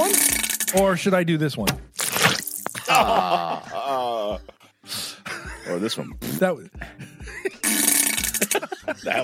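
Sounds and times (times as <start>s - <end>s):
speech: 0.7s - 5.0s, 5.7s - 7.6s, 8.4s - 9.2s
fart-like sound effects: 2.0s - 2.8s, 6.2s - 6.5s
laughter: 2.8s - 5.8s, 6.8s - 9.2s.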